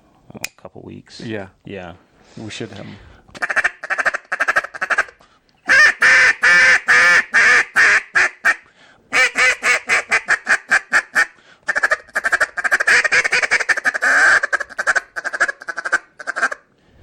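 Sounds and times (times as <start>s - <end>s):
speech: 0.8s - 3.1s
duck call in a small LT frame being blown: 3.4s - 16.7s.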